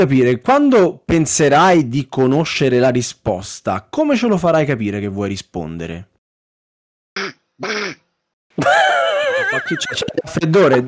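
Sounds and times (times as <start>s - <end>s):
speech: 0.0s - 6.1s, 7.6s - 7.9s, 9.6s - 10.8s
person imitating duck quacks as quiz answer buzzer: 7.2s - 8.1s
laughter: 8.6s - 10.8s.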